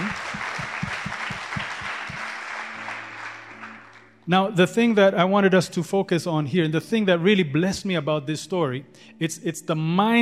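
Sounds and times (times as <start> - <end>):
low rhythmic thumps: 0.0 - 2.4
audience clapping: 0.0 - 4.3
speech: 4.3 - 10.1.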